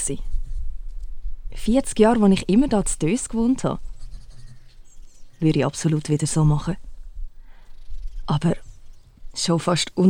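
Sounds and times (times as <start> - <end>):
speech: 0.0 - 0.3, 1.5 - 3.9, 5.4 - 6.9, 8.3 - 8.6, 9.4 - 10.0
pen scratching across notebook diary pages: 3.6 - 4.8.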